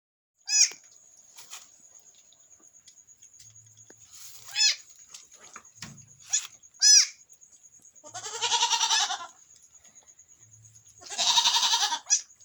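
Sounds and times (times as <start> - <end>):
newborn goat kid bleating in a farmhouse pen on a goat farm: 0.5 - 0.8, 8.0 - 9.4, 11.0 - 12.3.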